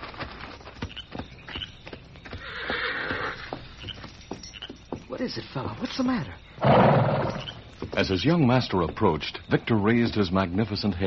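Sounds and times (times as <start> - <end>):
horse hooves knocking and stamping: 0.0 - 11.0
horse whinnying: 2.4 - 3.6, 6.6 - 7.7
speech: 5.2 - 7.1, 8.0 - 11.0.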